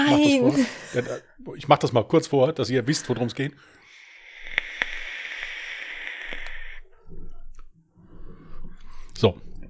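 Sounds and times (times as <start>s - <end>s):
speech: 0.1s - 3.8s, 9.2s - 9.6s
airy hiss of someone drawing on an e-cigarette: 3.8s - 6.8s.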